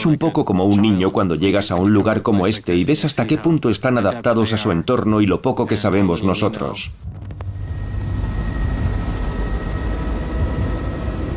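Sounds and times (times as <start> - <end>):
speech: 0.0 - 7.2
faint tonal whine: 0.0 - 11.3
helicopter flying over desert: 7.0 - 11.3.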